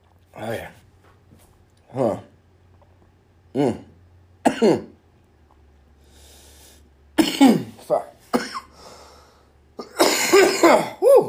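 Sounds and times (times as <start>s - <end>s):
speech: 0.4s - 0.8s, 1.9s - 2.2s, 3.6s - 3.8s, 4.6s - 4.9s
person muttering a word: 1.8s - 2.3s, 3.5s - 4.0s
person coughing in harsh bursts: 3.5s - 5.0s, 7.2s - 8.8s, 9.8s - 11.2s.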